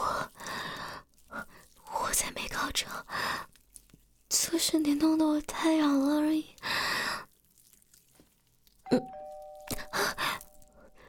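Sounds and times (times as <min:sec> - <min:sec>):
soft rustling: 0:00.0 - 0:11.0
speech: 0:02.8 - 0:03.5, 0:04.5 - 0:06.8
doorbell ringing at the door: 0:08.9 - 0:10.9.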